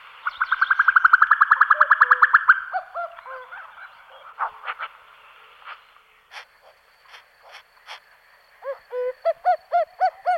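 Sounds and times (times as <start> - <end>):
Common cuckoo calling: 0.3 - 4.5, 8.6 - 10.3.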